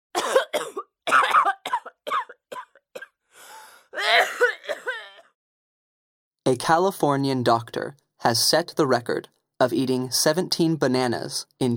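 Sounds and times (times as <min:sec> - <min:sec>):
person coughing in a harsh fit: 0:00.2 - 0:03.2, 0:04.0 - 0:05.3
wheezy drawn-in breath: 0:03.3 - 0:04.0
speech: 0:06.5 - 0:11.7.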